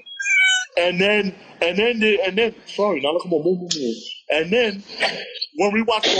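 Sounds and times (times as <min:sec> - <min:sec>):
cat meowing: 0:00.2 - 0:00.7
speech: 0:00.8 - 0:06.1.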